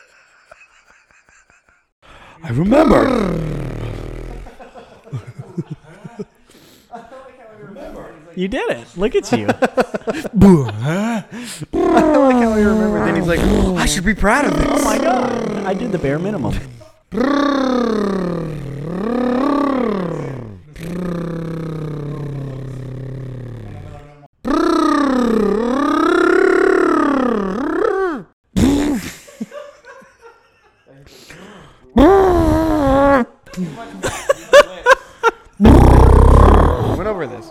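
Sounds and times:
laughter: 0:00.0 - 0:02.0, 0:04.3 - 0:07.3, 0:09.2 - 0:10.8, 0:11.8 - 0:12.7, 0:28.9 - 0:31.1, 0:33.5 - 0:35.6
speech: 0:02.4 - 0:03.7, 0:08.4 - 0:18.3
person imitating an elephant with trumpeting vocal calls: 0:02.5 - 0:04.6, 0:11.7 - 0:29.1, 0:32.0 - 0:33.4, 0:35.6 - 0:37.4.

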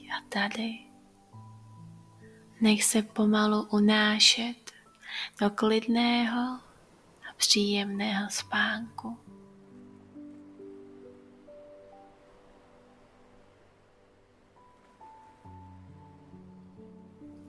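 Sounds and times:
sustained calm ambient tones: 0:00.0 - 0:17.4
speech: 0:00.2 - 0:00.9, 0:02.6 - 0:06.7, 0:07.4 - 0:09.3
soft sea waves rolling onto shore: 0:10.7 - 0:17.4.

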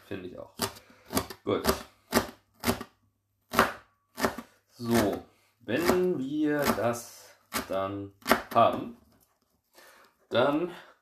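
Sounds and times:
speech: 0:00.1 - 0:00.8, 0:01.5 - 0:01.9, 0:05.7 - 0:09.0, 0:10.3 - 0:10.9
knife chopping a vegetable into small cubes on a board: 0:00.6 - 0:05.2, 0:05.8 - 0:08.9.

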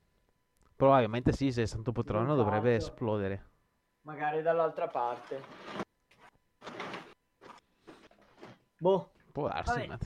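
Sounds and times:
speech: 0:00.8 - 0:05.8, 0:08.8 - 0:10.0
window being opened, scraping and sliding: 0:05.2 - 0:05.9, 0:06.6 - 0:07.2.

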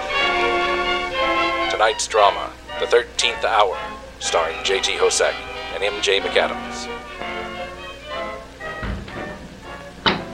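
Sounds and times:
sustained droning musical background: 0:00.0 - 0:10.3
speech: 0:01.8 - 0:07.2
heavy door deadbolt, chain, latch and padlock clunking: 0:08.6 - 0:10.3.

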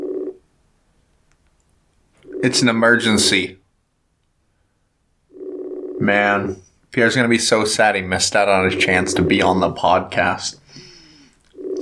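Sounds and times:
electronic phone call ringback tone: 0:00.0 - 0:00.4, 0:02.2 - 0:03.3, 0:05.3 - 0:06.1, 0:08.6 - 0:09.6, 0:11.5 - 0:11.8
speech: 0:02.4 - 0:03.6, 0:06.0 - 0:10.6.

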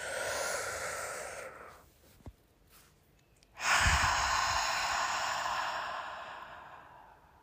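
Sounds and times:
person taking slow deep breaths: 0:00.0 - 0:01.9, 0:03.6 - 0:07.4.

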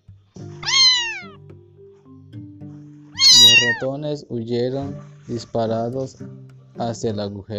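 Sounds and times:
cat meowing: 0:00.6 - 0:01.4, 0:03.2 - 0:03.9
speech: 0:03.6 - 0:07.5.

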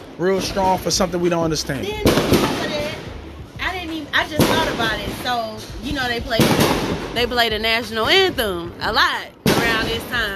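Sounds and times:
speech: 0:00.2 - 0:02.8, 0:04.1 - 0:10.3
fireworks popping outside: 0:02.0 - 0:03.0, 0:04.3 - 0:07.5, 0:09.4 - 0:10.3.

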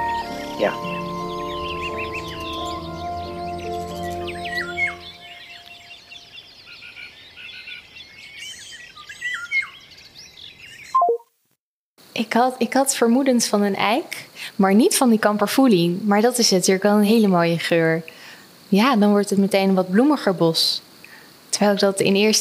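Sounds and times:
thrush singing in a forest at the edge of Paris: 0:00.0 - 0:05.8
nightingale singing in a forest at the edge of Paris: 0:00.0 - 0:11.2
speech: 0:00.6 - 0:01.0, 0:12.3 - 0:20.9, 0:21.5 - 0:22.3.

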